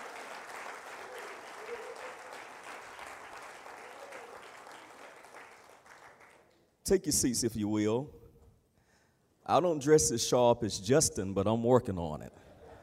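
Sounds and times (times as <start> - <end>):
church audience applause at a morning service: 0.0 - 6.6
speech: 6.9 - 8.2, 9.5 - 12.5.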